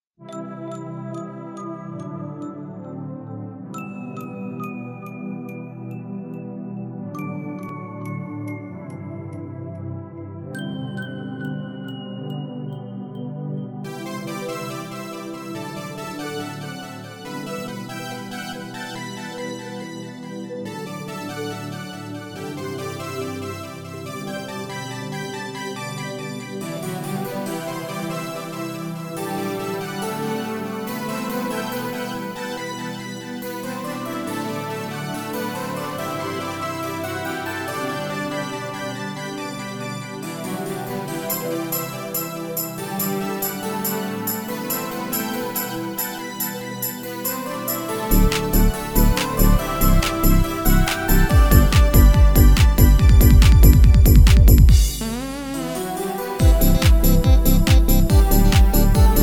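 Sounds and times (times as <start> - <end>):
Korg PA800 arranger keyboard demo song: 13.4 - 59.2.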